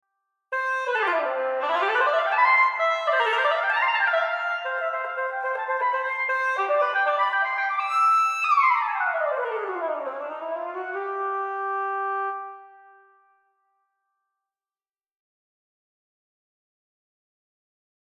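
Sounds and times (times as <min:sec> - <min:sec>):
oboe: 0:00.6 - 0:13.1.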